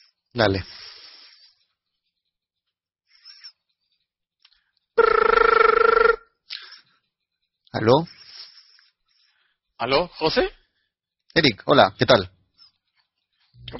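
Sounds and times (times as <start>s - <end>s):
speech: 0.4s - 0.8s, 7.8s - 8.2s, 9.8s - 10.6s, 11.4s - 12.4s
telephone ringback tone from an outgoing phone call: 5.0s - 6.2s.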